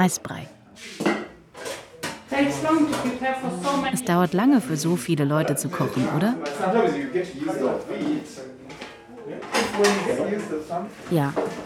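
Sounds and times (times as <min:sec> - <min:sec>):
speech: 0:00.0 - 0:01.0, 0:02.3 - 0:08.6, 0:09.3 - 0:11.6
plates, cutlery and pots clattering on a kitchen counter: 0:00.9 - 0:03.9, 0:07.5 - 0:11.6.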